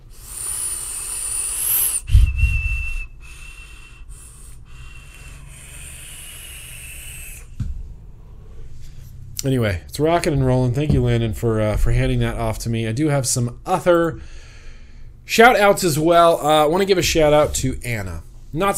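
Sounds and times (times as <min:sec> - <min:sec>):
airy hiss: 0:00.0 - 0:02.2, 0:03.4 - 0:07.5
thin steady high-pitched whistle: 0:00.8 - 0:04.5
low thump: 0:02.1 - 0:03.0, 0:07.6 - 0:08.0, 0:10.3 - 0:12.4
speech: 0:09.4 - 0:14.4, 0:15.3 - 0:18.7.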